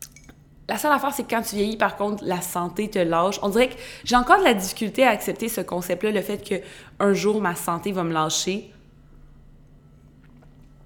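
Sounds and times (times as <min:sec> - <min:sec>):
low steady hum: 0:00.0 - 0:10.8
speech: 0:00.7 - 0:08.8
person sipping a drink: 0:10.0 - 0:10.8.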